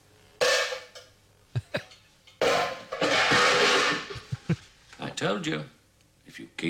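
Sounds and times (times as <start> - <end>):
banging on metal cooking pots: 0.4 - 1.1, 1.9 - 4.3
speech: 5.2 - 5.8, 6.4 - 6.6.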